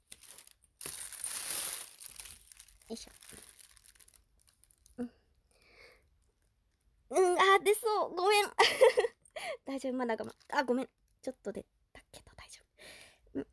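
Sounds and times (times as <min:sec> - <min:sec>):
plastic bag crinkling and rustling: 0:00.0 - 0:05.1
speech: 0:02.9 - 0:03.3, 0:05.0 - 0:05.2, 0:07.1 - 0:09.1, 0:09.7 - 0:11.8.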